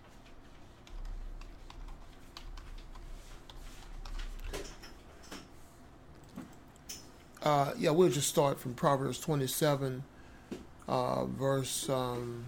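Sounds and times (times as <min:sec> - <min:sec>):
typing on a computer keyboard: 0:00.8 - 0:04.9
speech: 0:07.5 - 0:10.1, 0:10.9 - 0:12.4.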